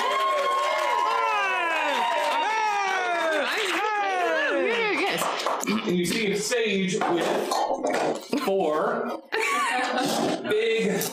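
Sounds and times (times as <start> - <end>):
large crowd cheering and whooping: 0.0 - 5.2
speech: 5.6 - 9.2, 9.9 - 11.1.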